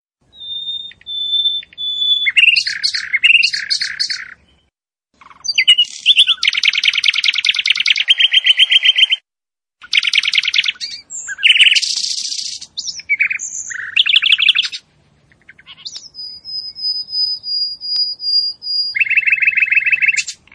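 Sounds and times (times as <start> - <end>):
bird song of varied chirps and rapid buzzy trills: 0.3 - 9.2, 9.8 - 20.5.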